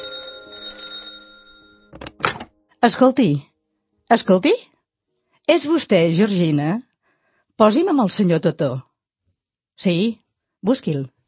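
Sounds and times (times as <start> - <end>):
telephone bell ringing in a hotel room: 0.0 - 2.0
speech: 2.8 - 3.5, 4.1 - 4.7, 5.5 - 6.9, 7.6 - 8.9, 9.8 - 11.2.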